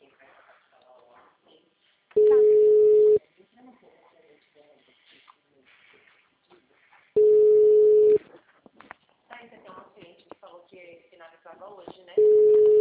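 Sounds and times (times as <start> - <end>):
phone ringback tone as a call is placed: 2.2 - 3.2, 7.2 - 8.2, 12.2 - 12.8.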